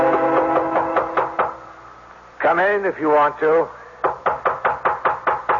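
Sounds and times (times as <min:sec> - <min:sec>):
firm knocking on a door: 0:00.1 - 0:01.6, 0:04.0 - 0:05.5
speech: 0:02.7 - 0:03.8.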